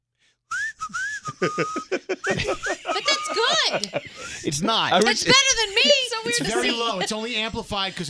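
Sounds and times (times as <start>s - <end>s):
person whistling between their two teeth: 0.5s - 2.9s
speech: 0.9s - 8.0s
laughter: 1.2s - 8.0s.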